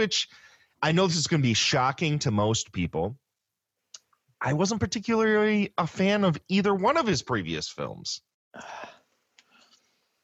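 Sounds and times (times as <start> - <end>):
speech: 0.0 - 3.2, 4.4 - 8.9
sharp breathy gasp: 8.6 - 9.8.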